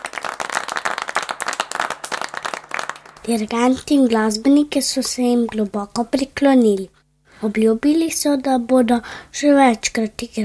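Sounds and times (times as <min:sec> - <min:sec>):
audience applauding orchestra musicians: 0:00.0 - 0:03.2
speech: 0:03.2 - 0:10.4.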